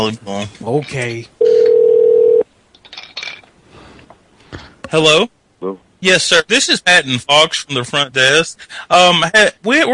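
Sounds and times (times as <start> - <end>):
speech: 0.0 - 1.6, 4.9 - 9.9
telephone beep while calling a motel: 1.4 - 2.4.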